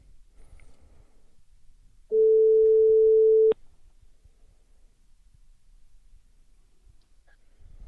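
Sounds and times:
telephone ringback tone on an outgoing call: 0:02.1 - 0:03.6.

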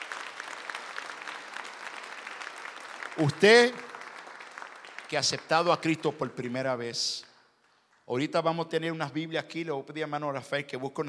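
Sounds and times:
congregation applauding loudly: 0:00.0 - 0:06.6
speech: 0:03.2 - 0:03.9, 0:05.1 - 0:07.3, 0:08.1 - 0:11.0.

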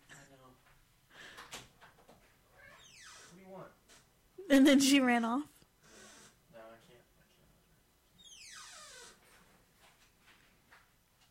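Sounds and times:
studio door creaking open: 0:01.4 - 0:04.1, 0:08.2 - 0:09.5
speech: 0:04.5 - 0:05.5.

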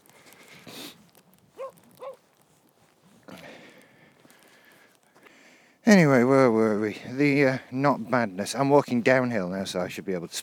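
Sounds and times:
outdoor rustling: 0:00.0 - 0:10.4
dog barking: 0:01.6 - 0:02.2
speech: 0:05.9 - 0:10.4.

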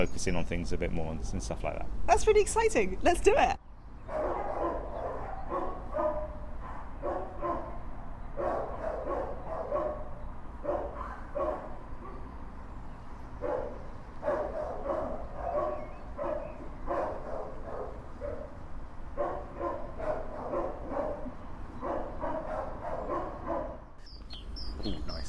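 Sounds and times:
speech: 0:00.0 - 0:04.2
dogs barking at an animal shelter: 0:04.0 - 0:12.6, 0:13.3 - 0:24.0.

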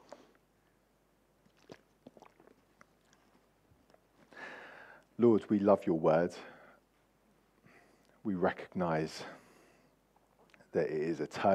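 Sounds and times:
swallow: 0:01.4 - 0:03.4
small wet mouth clicks: 0:01.4 - 0:04.0
person sipping water: 0:01.4 - 0:04.1
speech: 0:05.2 - 0:06.5, 0:08.2 - 0:09.4, 0:10.8 - 0:11.5.

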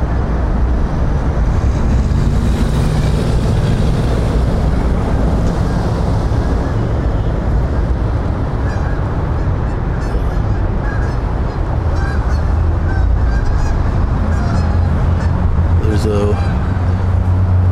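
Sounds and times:
steady low rumble of traffic: 0:00.0 - 0:17.7
geese honking while flying overhead above a wooded strip between drainage tunnels: 0:04.9 - 0:17.4.

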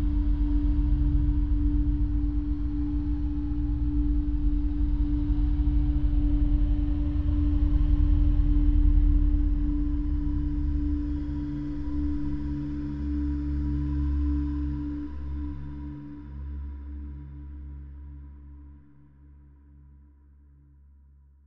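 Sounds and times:
deep slowly throbbing rumble: 0:00.0 - 0:12.5
eerie ambient drone with a steady ringing mid-low tone: 0:00.0 - 0:17.8.

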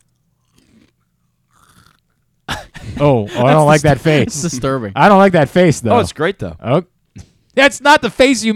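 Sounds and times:
crunchy cereal being chewed into microphone: 0:00.0 - 0:02.3
faint low hum: 0:00.0 - 0:08.5
speech: 0:03.0 - 0:08.5.

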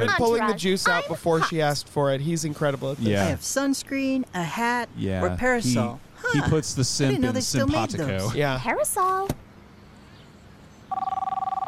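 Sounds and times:
speech: 0:00.0 - 0:09.4
telephone bell ringing: 0:10.9 - 0:11.6.

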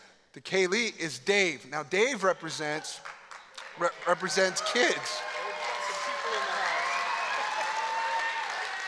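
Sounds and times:
speech: 0:00.4 - 0:03.2, 0:03.8 - 0:05.3
audience clapping: 0:02.8 - 0:08.8.

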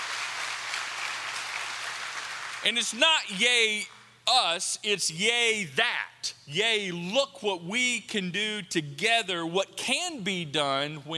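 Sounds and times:
church audience applauding: 0:00.0 - 0:02.9
speech: 0:02.6 - 0:11.1.

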